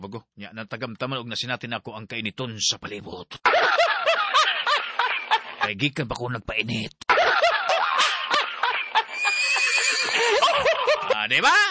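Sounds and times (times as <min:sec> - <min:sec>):
speech: 0:00.0 - 0:04.2, 0:05.6 - 0:07.1, 0:11.2 - 0:11.6
laughter: 0:03.4 - 0:05.7, 0:07.1 - 0:11.6
horse neighing: 0:09.1 - 0:10.4.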